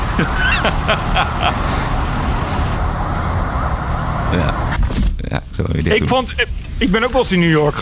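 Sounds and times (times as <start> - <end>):
laughter: 0.0 - 1.9
busy city street traffic on Canal Street in New York: 0.0 - 7.8
speech: 0.2 - 1.7, 5.3 - 7.8.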